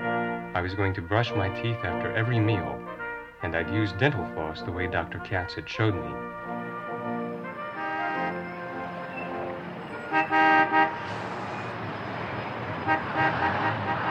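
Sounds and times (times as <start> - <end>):
car horns honking in rush-hour street traffic at sunset: 0.0 - 14.0
speech: 0.6 - 6.8
steady roar of rush-hour street traffic at sunset: 6.8 - 14.0.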